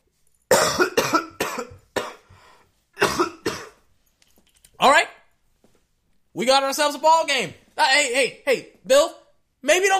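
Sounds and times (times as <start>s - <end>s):
person coughing harsh hacking coughs: 0.5s - 2.4s, 3.0s - 3.9s
speech: 6.4s - 9.9s.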